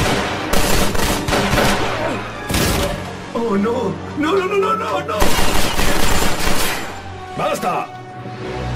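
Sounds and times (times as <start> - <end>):
rapid bursts of gunfire: 0.0 - 3.0, 5.2 - 7.0
speech: 3.5 - 5.8, 7.4 - 8.0.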